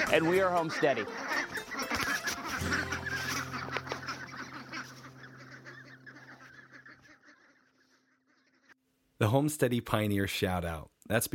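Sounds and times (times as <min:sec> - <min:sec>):
flock of ducks quacking: 0:00.0 - 0:08.8
speech: 0:00.1 - 0:01.4, 0:09.2 - 0:11.3.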